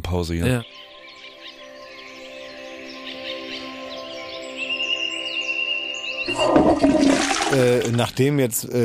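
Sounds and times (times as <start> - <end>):
speech: 0.1 - 0.9, 6.3 - 8.8
nightingale singing: 0.5 - 7.4
rushing splashing burst: 6.3 - 7.9.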